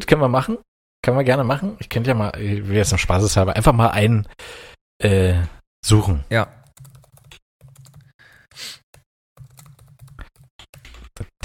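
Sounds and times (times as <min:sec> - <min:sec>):
speech: 0:00.1 - 0:06.6
typing on a computer keyboard: 0:06.6 - 0:08.1, 0:09.4 - 0:11.3.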